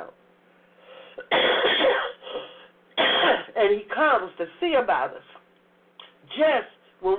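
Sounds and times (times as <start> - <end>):
person coughing: 1.2 - 3.6
speech: 3.6 - 5.4, 6.3 - 7.1.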